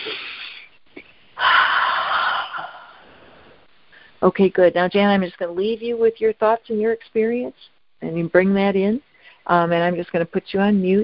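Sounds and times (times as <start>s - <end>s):
person taking a deep breath during a guided focusing exercise: 1.4s - 4.2s
speech: 4.2s - 11.0s.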